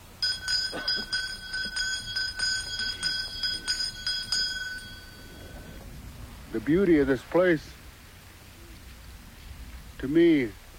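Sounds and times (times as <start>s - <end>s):
hand bell ringing at a gathering: 0.0s - 5.8s
speech: 6.6s - 7.8s, 10.0s - 10.6s.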